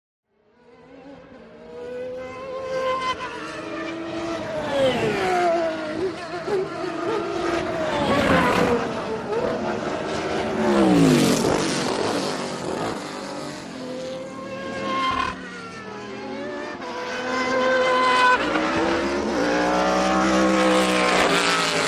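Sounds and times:
sports car passing by: 0.6s - 21.8s.

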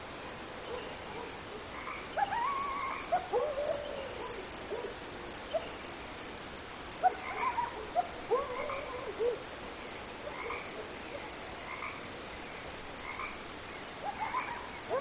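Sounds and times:
steady hiss: 0.0s - 14.9s
coyote yipping chorus: 0.6s - 5.9s, 7.0s - 12.0s, 13.0s - 14.9s.

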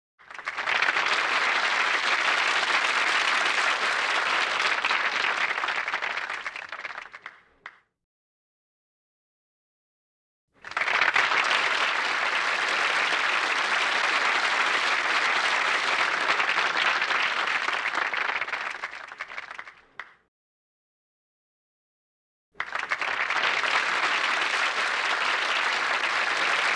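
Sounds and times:
rowdy crowd cheering indoors: 0.4s - 6.4s, 10.6s - 19.1s, 22.6s - 26.7s.

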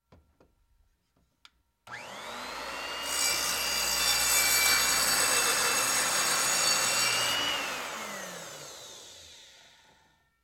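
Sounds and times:
electric circular saw switched on: 1.9s - 10.1s.

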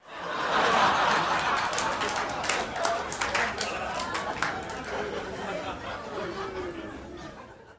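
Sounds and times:
medium crowd laughter: 0.0s - 7.7s
medium crowd applause: 0.4s - 5.3s.

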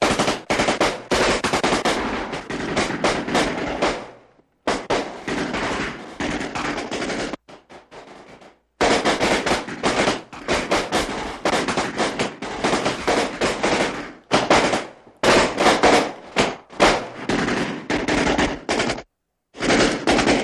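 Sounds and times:
modern gunfight shots: 0.0s - 20.4s.

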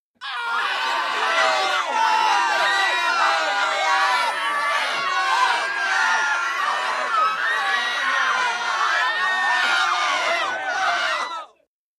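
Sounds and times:
crowd screaming in panic: 0.2s - 11.5s.

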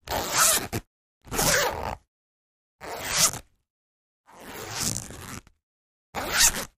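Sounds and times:
thin zipper moving: 0.0s - 2.0s, 2.8s - 3.5s, 4.3s - 5.6s, 6.2s - 6.7s.

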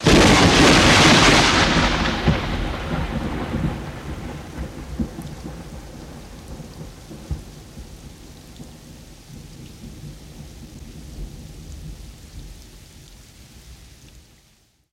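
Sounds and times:
high thunder crack: 0.0s - 7.9s.

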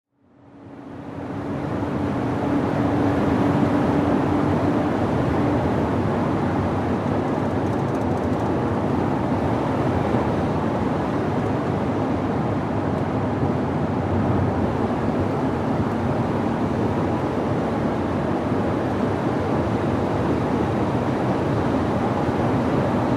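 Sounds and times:
SUV driving at 100 mph: 0.4s - 23.1s.

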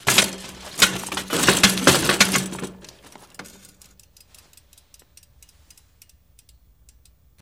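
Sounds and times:
bike hit: 0.0s - 3.8s
bike tire spinning: 0.0s - 5.9s.

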